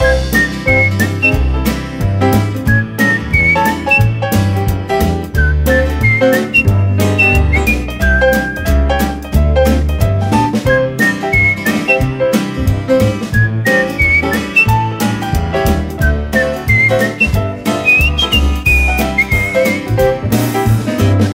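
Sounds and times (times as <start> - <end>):
whistling: 0.0 - 1.6, 2.7 - 4.4, 5.3 - 8.8, 10.7 - 12.2, 13.3 - 14.9, 16.0 - 20.0
jazz music: 0.0 - 21.3.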